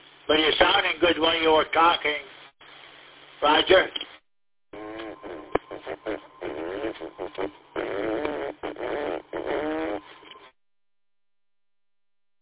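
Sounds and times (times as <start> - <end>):
speech: 0.3 - 2.3, 3.4 - 4.1
mouth-blown fart noises over a tinny radio repeater channel: 4.8 - 10.6.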